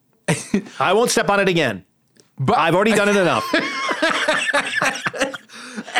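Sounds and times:
speech: 0.3s - 3.8s
laughter: 2.9s - 5.9s
choking cough with raspy voiced gasps: 4.8s - 5.9s.

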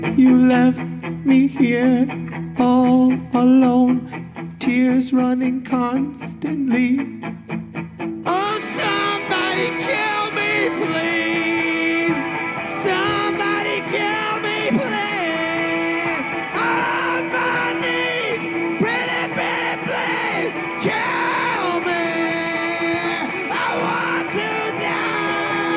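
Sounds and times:
speech: 0.0s - 7.6s
man screaming a song with cracking voice: 8.3s - 25.7s.

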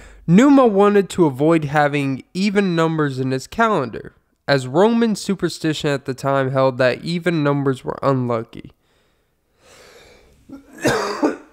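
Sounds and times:
speech: 0.3s - 8.8s, 10.5s - 11.2s
person coughing with a throaty rasp: 10.5s - 11.5s.

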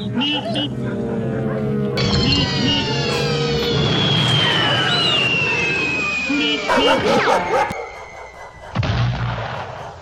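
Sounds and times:
dog barking and yipping: 0.2s - 1.8s, 6.7s - 8.6s
long whistling sweep: 2.0s - 9.9s.

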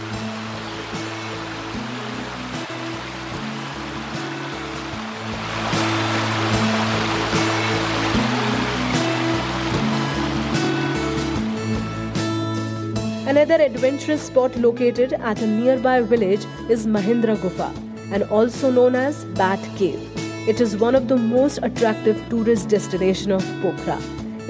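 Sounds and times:
rushing waterfall: 0.0s - 12.1s
speech: 13.3s - 24.4s.

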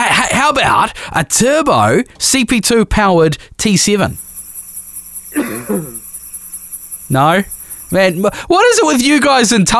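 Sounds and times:
speech: 0.5s - 4.2s, 5.3s - 6.0s, 7.1s - 9.7s
steady high-pitched insect chirring: 3.9s - 9.3s
person coughing: 5.3s - 6.0s.

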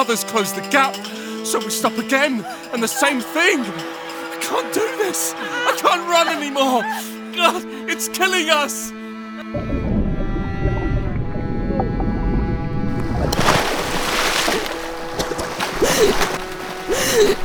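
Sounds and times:
speech: 0.0s - 9.8s, 17.2s - 17.4s
watery rumbling: 9.5s - 17.4s
water splashing: 12.9s - 17.4s
person gasping for breath: 15.7s - 17.4s.

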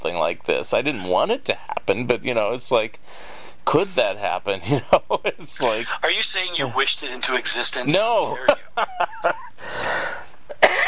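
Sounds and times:
speech: 0.3s - 9.9s
long raspy wheezing breath: 3.0s - 3.6s, 9.6s - 10.4s
laughter: 4.6s - 6.1s, 7.9s - 9.6s
person coughing: 10.5s - 10.8s.

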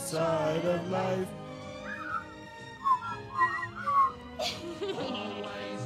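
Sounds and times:
speech: 0.2s - 1.4s
people whistling a short bouncy tune together: 1.7s - 4.4s
laughter: 4.4s - 5.8s.

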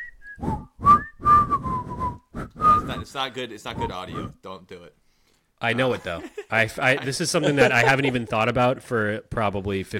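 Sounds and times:
person whistling a bouncy commercial jingle melody: 0.0s - 3.1s
speech: 3.1s - 5.0s, 5.6s - 9.9s
laughter: 5.7s - 8.8s.

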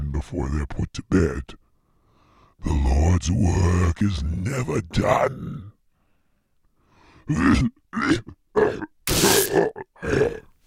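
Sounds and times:
speech: 0.2s - 1.6s, 2.6s - 5.7s, 7.3s - 10.5s
person hacking and grunting with harsh throat-clearing: 7.4s - 10.4s.

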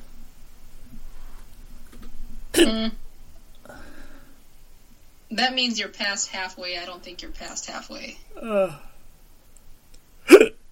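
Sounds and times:
person hiccuping: 2.6s - 2.9s, 8.4s - 8.9s, 10.3s - 10.6s
speech: 2.6s - 3.0s, 5.3s - 8.9s.

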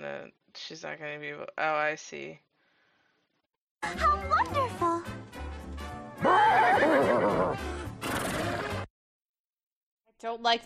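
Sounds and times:
speech: 0.0s - 2.5s, 3.8s - 4.8s, 10.2s - 10.6s
dog imitating a horse whinny: 6.2s - 8.7s.

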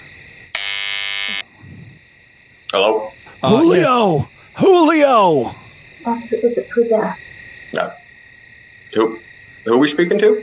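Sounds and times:
loud harsh electric door buzzer: 0.5s - 1.5s
faint noise: 1.4s - 10.4s
speech: 2.7s - 8.0s, 8.9s - 10.4s.

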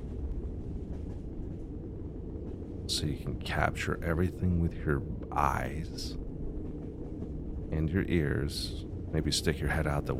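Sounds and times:
moving train rumbling: 0.0s - 10.1s
speech: 2.9s - 6.2s, 7.7s - 10.1s.

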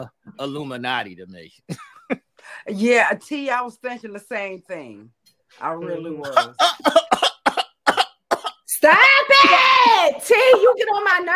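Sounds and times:
speech: 0.0s - 1.9s, 2.5s - 7.2s, 8.8s - 11.3s
man coughing: 6.3s - 8.7s.

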